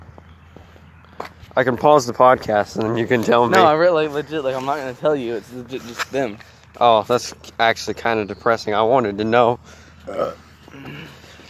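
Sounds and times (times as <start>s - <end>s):
speech: 1.6s - 11.0s
person burping: 10.0s - 11.3s.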